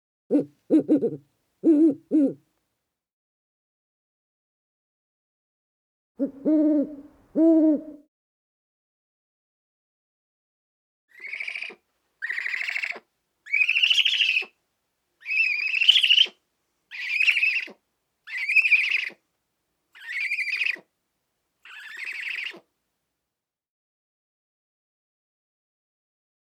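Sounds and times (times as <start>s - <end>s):
owl calling: 0.3s - 2.4s, 6.2s - 8.0s, 11.2s - 14.5s, 15.2s - 19.2s, 20.0s - 20.9s, 21.7s - 22.6s.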